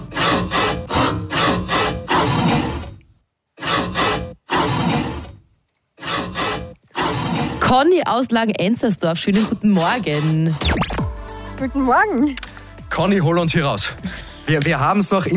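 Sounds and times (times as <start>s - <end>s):
handsaw sawing through a plastic rubbish bin: 0.0s - 2.9s, 3.6s - 5.4s, 6.0s - 7.8s, 9.3s - 10.7s
speech: 7.7s - 10.9s, 11.6s - 12.4s, 13.0s - 15.3s.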